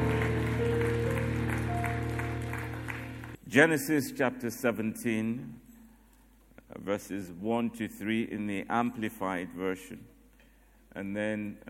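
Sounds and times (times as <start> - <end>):
church audience clapping during a worship service: 0.0 - 3.4
sustained keyboard or organ chords: 0.0 - 3.4
speech: 3.5 - 5.6, 6.8 - 10.1, 10.9 - 11.6.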